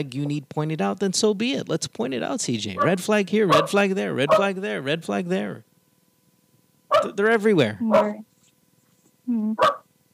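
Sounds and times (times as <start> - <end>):
speech: 0.0 - 5.7, 6.9 - 8.3, 9.3 - 9.8
dog barking: 2.8 - 4.6, 6.9 - 7.2, 7.9 - 8.2, 9.6 - 9.9.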